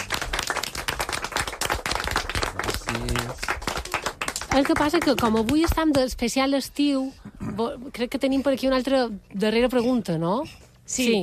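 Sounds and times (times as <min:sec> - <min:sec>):
small group applause in a studio: 0:00.0 - 0:06.0
speech: 0:02.9 - 0:03.5, 0:04.6 - 0:11.2.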